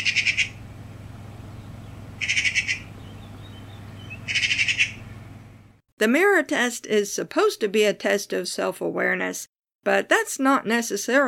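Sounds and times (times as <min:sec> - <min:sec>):
Eurasian magpie giving harsh rattling chatter: 0:00.0 - 0:00.6, 0:02.1 - 0:05.2
steady low hum: 0:00.0 - 0:05.8
speech: 0:06.0 - 0:11.2.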